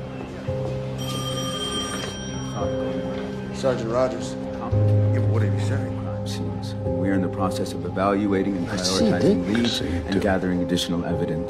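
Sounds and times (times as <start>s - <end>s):
telephone ringing with electronic trill: 1.0s - 3.5s
speech: 2.6s - 11.4s.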